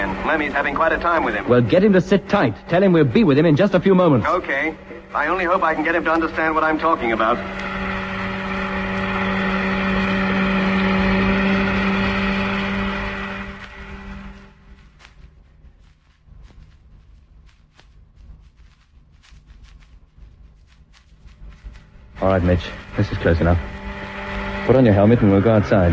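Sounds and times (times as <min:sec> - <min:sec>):
heavy truck engine droning while driving: 0:00.0 - 0:16.0, 0:21.2 - 0:25.9
speech: 0:00.3 - 0:07.7, 0:22.2 - 0:23.8, 0:24.7 - 0:25.9.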